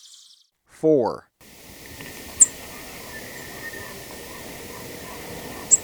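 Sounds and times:
speech: 0.8 - 1.3
ash-breasted sierra finch calling in Ecuador: 1.5 - 5.8.

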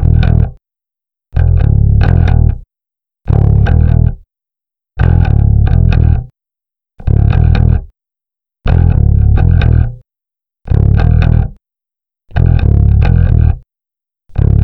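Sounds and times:
rock bass guitar: 0.0 - 0.6, 1.4 - 2.6, 3.3 - 4.2, 5.0 - 6.3, 7.0 - 7.9, 8.7 - 10.0, 10.7 - 11.6, 12.3 - 13.6, 14.3 - 14.6.

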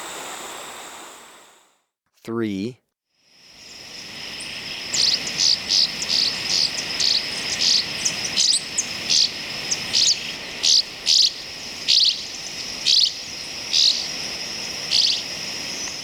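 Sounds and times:
steady high-pitched hiss: 0.0 - 1.7, 3.3 - 16.0
speech: 2.3 - 2.8
Southern rough-winged swallow calls in Ecuador: 3.6 - 16.0.

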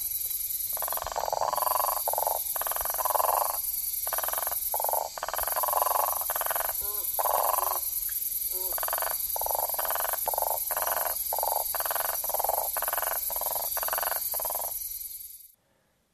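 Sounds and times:
steady high insect hiss: 0.0 - 15.6
South American common toad calling in the Ecuadorian Amazon: 0.8 - 14.8.

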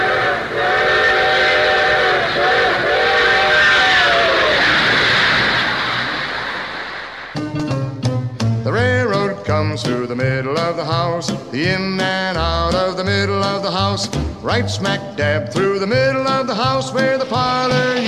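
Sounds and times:
steam train whistle in long sustained blasts: 0.0 - 4.8
steam train rumbling past: 0.0 - 18.0
speech: 13.9 - 18.0.

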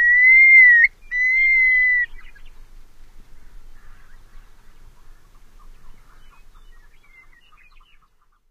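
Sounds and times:
long-billed curlew whistles: 0.0 - 2.3.

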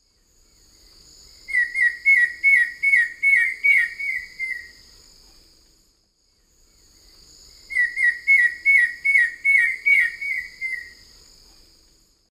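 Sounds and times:
Myrmeciza melanoceps duet in eastern lowlands of South America: 1.4 - 5.0, 6.7 - 11.2.

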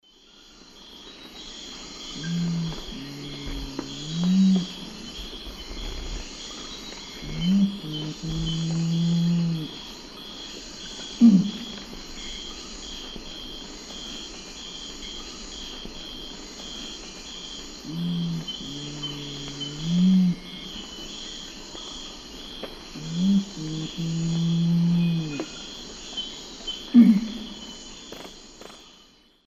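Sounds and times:
Nothocrax urumutum song in Eastern Lowlands of South America: 0.0 - 13.6, 14.6 - 28.1.

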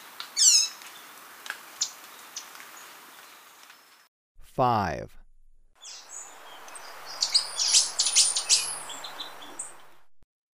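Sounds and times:
speech: 4.6 - 5.2
slaty antwren song of bright high chirped notes: 5.8 - 10.1
soft hiss: 6.1 - 10.0.

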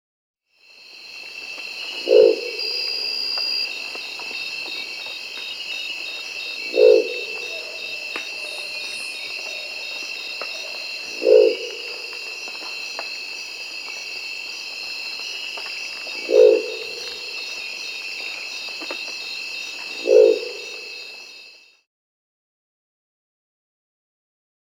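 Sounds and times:
Crested Owl Lophostrix cristata in Peru: 2.0 - 3.6, 6.7 - 9.8, 10.6 - 11.8, 16.2 - 17.2, 20.0 - 20.7.

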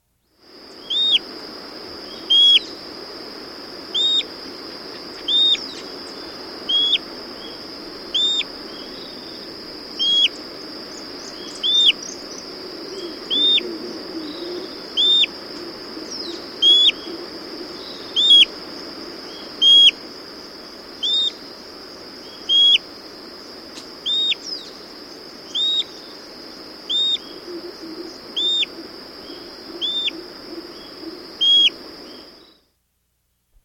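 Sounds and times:
Paltry Tyrannulet in South America: 0.8 - 1.2, 2.2 - 2.7, 4.0 - 4.3, 5.2 - 5.9, 6.7 - 7.0, 8.1 - 8.5, 11.3 - 12.2, 12.9 - 18.5, 19.5 - 20.0, 21.0 - 21.4, 22.4 - 22.8, 24.1 - 24.6, 25.5 - 26.0, 26.9 - 31.8.

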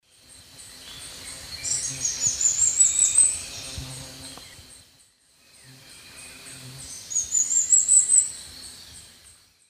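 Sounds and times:
Heliodoxa schreibersii song in the Eastern Lowlands of South America: 0.1 - 9.6.

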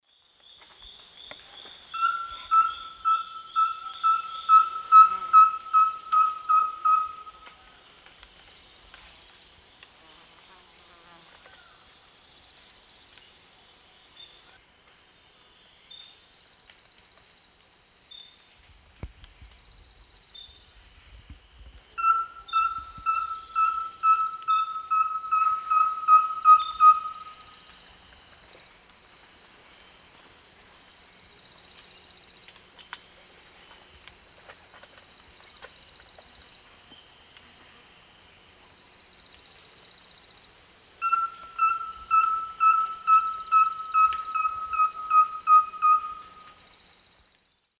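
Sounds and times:
Liosceles thoracicus singing in the Eastern Lowlands of South America: 2.0 - 7.4, 22.0 - 27.6, 41.0 - 46.8.

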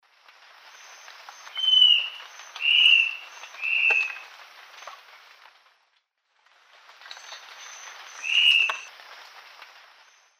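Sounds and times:
Phlegopsis nigromaculata song in the eastern lowlands of South America: 0.8 - 4.3, 7.2 - 8.9.

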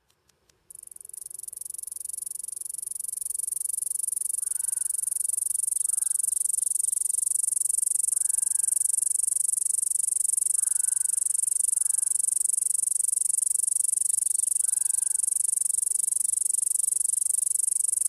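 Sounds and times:
Canadian cicada Okanagana canadensis song: 0.7 - 18.0.

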